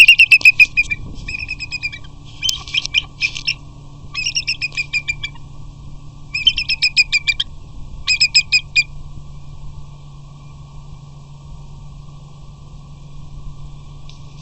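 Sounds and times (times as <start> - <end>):
eagle calling in high piping chirps: 0.0 - 5.6, 6.2 - 9.0
low steady hum: 0.0 - 14.3.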